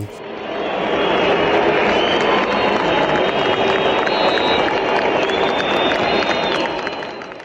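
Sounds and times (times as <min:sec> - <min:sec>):
dense stadium crowd roaring: 0:00.0 - 0:07.2
sharp sustained whistles from the stadium crowd: 0:03.0 - 0:07.4.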